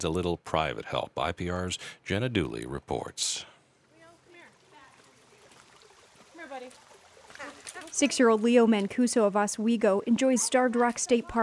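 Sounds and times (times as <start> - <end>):
speech: 0.0 - 3.6, 7.7 - 11.4
small stream trickling and burbling: 3.7 - 9.4.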